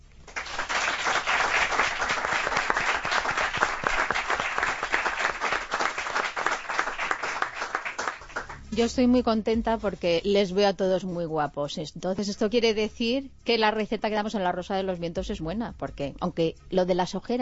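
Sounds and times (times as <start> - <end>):
studio audience applause in a radio studio: 0.3 - 8.6
speech: 8.8 - 17.3.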